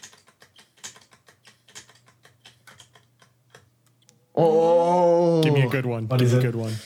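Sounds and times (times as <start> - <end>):
spinning battery-powered prize wheel ticking: 0.0 - 3.7
speech: 4.4 - 5.0, 5.6 - 6.8.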